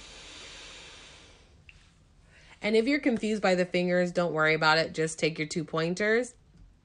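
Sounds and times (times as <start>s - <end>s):
exhaling through the right nostril during alternate-nostril breathing: 0.0s - 1.9s
speech: 2.6s - 6.4s.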